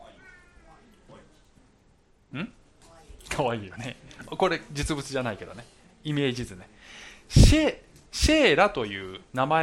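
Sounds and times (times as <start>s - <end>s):
cat meowing: 0.2s - 0.7s
speech: 2.3s - 2.6s, 3.4s - 9.6s.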